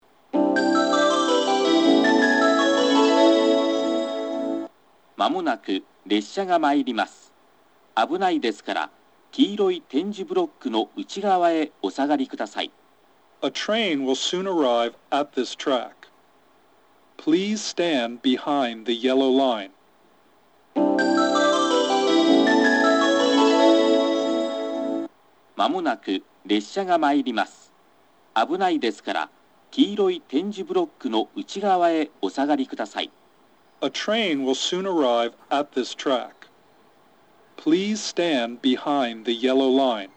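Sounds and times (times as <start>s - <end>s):
up train approach melody over station speakers: 0.4s - 4.7s, 20.8s - 25.1s
male station announcement over platform speakers: 5.2s - 7.4s, 8.0s - 12.8s, 13.4s - 16.1s, 17.2s - 19.8s, 25.6s - 27.7s, 28.4s - 33.2s, 33.8s - 36.5s, 37.6s - 40.1s.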